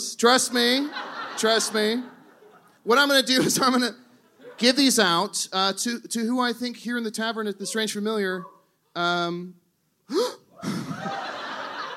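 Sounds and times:
speech: 0.2 - 2.2, 2.8 - 4.0, 4.6 - 10.8
crowd reaction and laughter: 0.4 - 2.8, 4.3 - 4.8, 10.6 - 11.9
audience member gasping in shock: 10.1 - 11.0.

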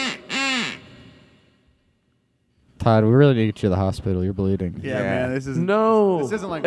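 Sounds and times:
duck whistle quacking: 0.0 - 1.4
speech: 2.8 - 6.6.

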